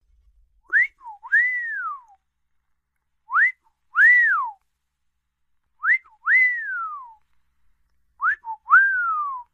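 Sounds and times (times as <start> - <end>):
person whistling: 0.7 - 2.2, 3.3 - 4.6, 5.8 - 7.2, 8.2 - 9.5.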